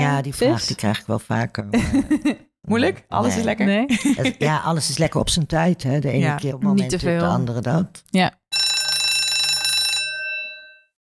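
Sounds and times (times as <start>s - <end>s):
speech: 0.1s - 8.4s
laughter: 1.7s - 2.5s, 3.3s - 4.7s
bell ringing: 8.5s - 11.0s.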